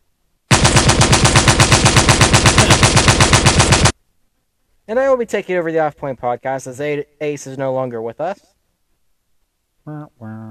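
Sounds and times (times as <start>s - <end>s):
machine gun fire: 0.5s - 4.0s
speech: 4.9s - 8.5s, 9.8s - 10.4s.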